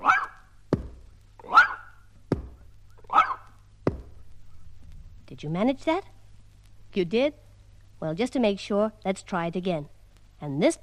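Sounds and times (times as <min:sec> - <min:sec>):
small dog barking: 0:00.0 - 0:00.5, 0:01.4 - 0:02.0, 0:03.1 - 0:03.6
soft thump on the floor: 0:00.7 - 0:01.1, 0:02.3 - 0:02.6, 0:03.8 - 0:04.2
speech: 0:05.3 - 0:06.2, 0:06.9 - 0:07.4, 0:08.0 - 0:10.8.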